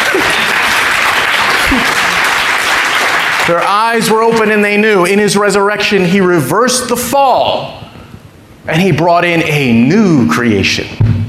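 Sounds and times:
audience steady dense applause: 0.0s - 4.0s
speech: 3.5s - 7.8s, 8.7s - 11.1s.

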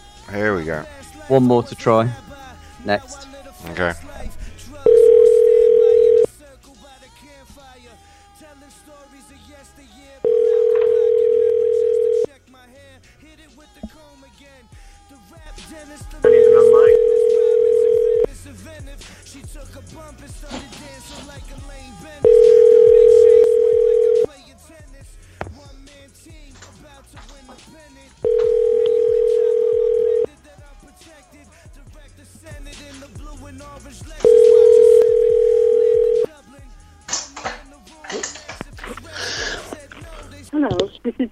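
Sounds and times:
speech: 0.3s - 4.4s
telephone line tone beeps heard through a dialing machine: 4.9s - 6.3s, 10.3s - 12.3s, 16.2s - 18.3s, 22.2s - 24.3s, 28.2s - 30.3s, 34.2s - 36.3s.

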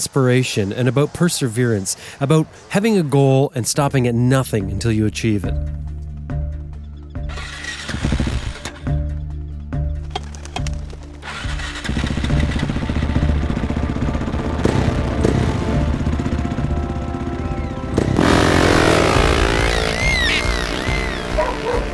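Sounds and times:
speech: 0.0s - 5.8s
motorcycle engine revving during a desert race on sand dunes: 7.2s - 9.1s, 10.5s - 21.9s.

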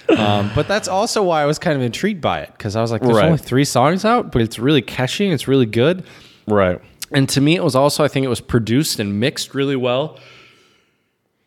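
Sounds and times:
breathy yawn: 0.0s - 0.9s
speech: 0.2s - 10.4s.

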